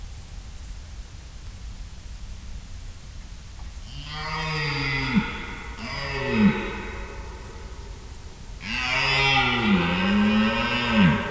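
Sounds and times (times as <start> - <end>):
red deer stag roaring during the rut in Schönbuch near Tübingen, Germany: 3.9 - 11.2.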